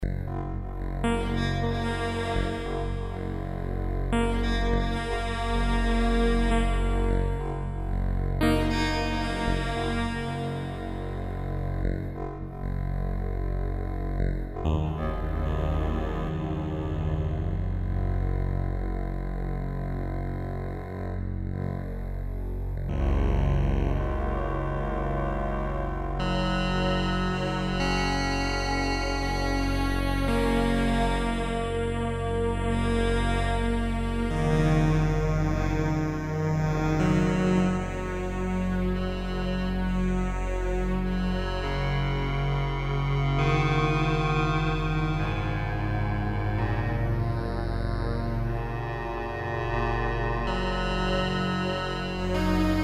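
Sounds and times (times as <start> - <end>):
Yamaha TG33 synthesizer: 0.0 - 52.8.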